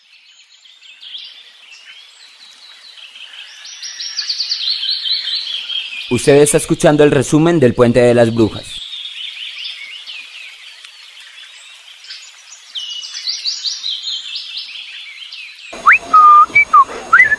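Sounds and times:
speech: 0:06.1 - 0:08.8
63-year-old man whistling in imitation of birdsong: 0:15.8 - 0:17.3.

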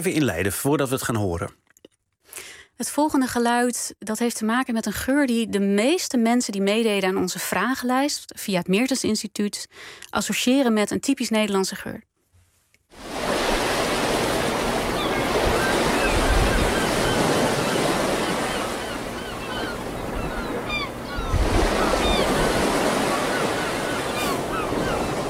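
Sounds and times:
speech: 0:00.0 - 0:01.6, 0:02.4 - 0:12.1
sea waves rolling onto a Dutch beach: 0:12.9 - 0:25.2.

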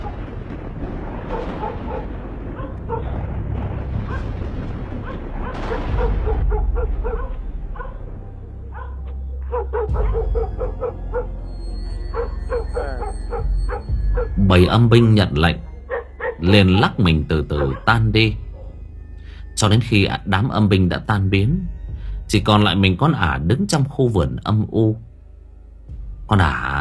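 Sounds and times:
dogs barking wildly in a village: 0:01.3 - 0:03.2, 0:04.0 - 0:04.3, 0:05.0 - 0:08.0, 0:08.7 - 0:11.4, 0:12.1 - 0:14.4, 0:15.9 - 0:18.8
speech: 0:14.5 - 0:15.7, 0:16.4 - 0:18.4, 0:19.6 - 0:21.7, 0:22.3 - 0:25.1, 0:26.3 - 0:26.7.

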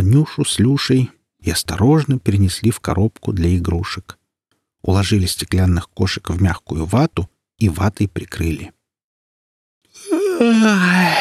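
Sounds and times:
speech: 0:00.0 - 0:04.2, 0:04.8 - 0:08.8, 0:10.0 - 0:11.1
person yawning: 0:10.0 - 0:11.1.

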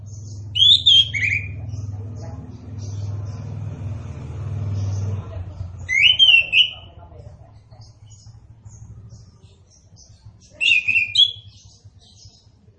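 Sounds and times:
steady low engine rumble: 0:00.0 - 0:12.7
Orange-headed thrush singing slurred whistled phrases: 0:00.3 - 0:01.7, 0:05.8 - 0:06.9, 0:10.4 - 0:11.8.

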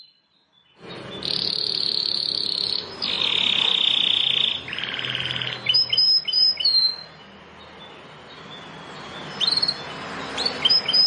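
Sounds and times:
prinia song with buzzy rasping trills: 0:00.8 - 0:11.0.

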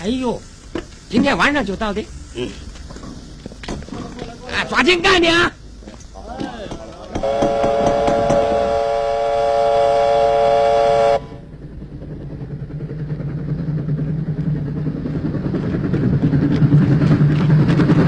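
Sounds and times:
speech: 0:00.0 - 0:00.5, 0:01.1 - 0:02.7, 0:04.6 - 0:05.6, 0:07.2 - 0:07.8
rumbling clatter of moving train: 0:00.0 - 0:18.0
train horn at night: 0:07.2 - 0:11.4.

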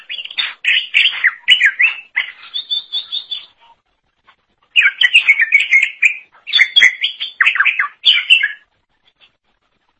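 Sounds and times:
leafbird warbling song of whistles and chattering notes: 0:00.0 - 0:03.6, 0:04.8 - 0:08.7.

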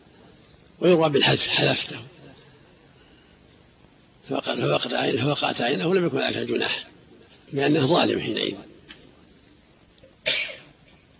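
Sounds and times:
speech: 0:00.8 - 0:02.1, 0:04.3 - 0:08.7
person sneezing: 0:10.2 - 0:10.7.

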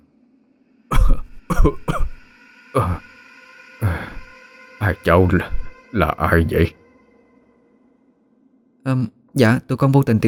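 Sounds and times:
elderly man coughing violently: 0:00.9 - 0:02.2
speech: 0:01.6 - 0:02.1, 0:02.8 - 0:03.1, 0:04.9 - 0:06.8, 0:08.8 - 0:10.2.

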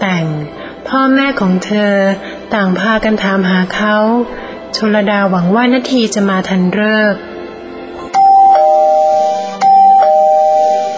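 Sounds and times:
speech: 0:00.9 - 0:07.3
front-door electronic doorbell ding-dong chimes: 0:08.1 - 0:10.9.

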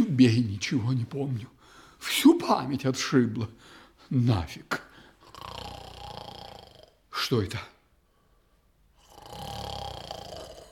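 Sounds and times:
speech: 0:00.2 - 0:04.8, 0:07.2 - 0:07.7
person snoring in bed: 0:05.2 - 0:07.0, 0:09.0 - 0:10.7.

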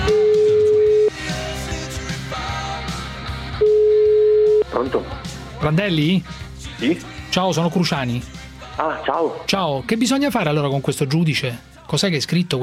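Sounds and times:
Italian telephone ringback tone while a phone call is placed: 0:00.1 - 0:01.1, 0:03.6 - 0:04.7
speech: 0:04.8 - 0:12.6.

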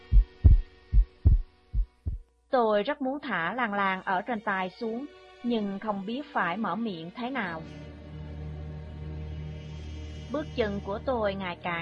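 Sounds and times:
heartbeat thumps sound effect: 0:00.0 - 0:02.2
speech: 0:02.5 - 0:07.9, 0:10.3 - 0:11.8.

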